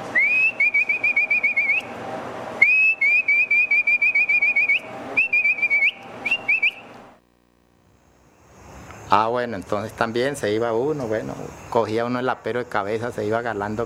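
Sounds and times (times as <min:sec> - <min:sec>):
herder's whistle for driving pack animals and horses toward the corral: 0:00.1 - 0:02.0, 0:02.6 - 0:06.9
speech: 0:09.1 - 0:13.8.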